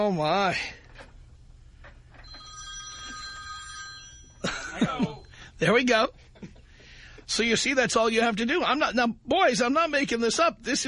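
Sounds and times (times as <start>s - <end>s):
speech: 0.0s - 0.8s, 4.8s - 6.5s, 7.3s - 10.8s
alarm ringtone mimicking a telephone ring: 2.2s - 5.2s.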